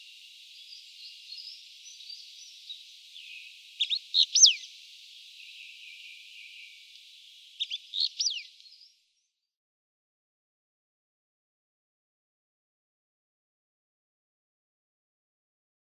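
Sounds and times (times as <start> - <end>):
faint hiss: 0.0 - 9.3
wallcreeper calls with high thin chirps and slurred whistles: 3.8 - 4.7, 7.6 - 8.5.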